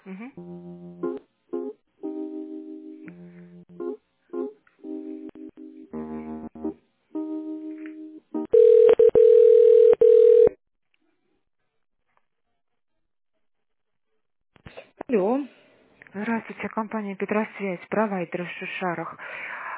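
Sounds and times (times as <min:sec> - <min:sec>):
speech: 0:00.2 - 0:00.6, 0:16.8 - 0:19.6
telephone line tones while a call is being transferred: 0:08.5 - 0:10.6.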